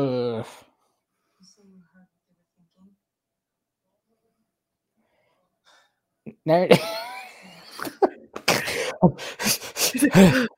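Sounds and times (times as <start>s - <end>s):
speech: 6.4s - 7.1s, 9.0s - 10.5s
laughter: 6.8s - 10.5s
heavy breathing: 8.5s - 10.5s
brief wavering vocal tone: 9.9s - 10.5s.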